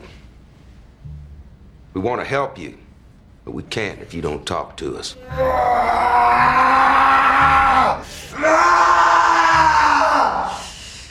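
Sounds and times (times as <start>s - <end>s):
speech: 2.0s - 2.8s, 3.4s - 7.0s
man screaming: 5.2s - 10.6s
gasp: 10.5s - 11.1s.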